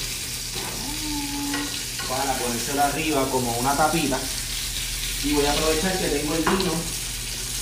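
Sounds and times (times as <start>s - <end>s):
butter sizzling in a frying pan: 0.0s - 7.6s
speech: 2.1s - 4.4s, 5.2s - 7.0s.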